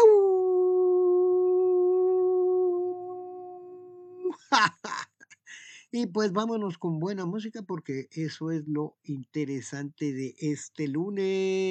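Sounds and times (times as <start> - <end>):
long steady howl: 0.0 - 4.3
speech: 4.3 - 5.1, 5.9 - 11.7.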